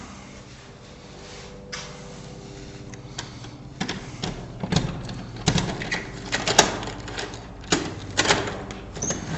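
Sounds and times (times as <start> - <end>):
keys being tried in the lock of a ground-floor apartment door: 3.8 - 9.2.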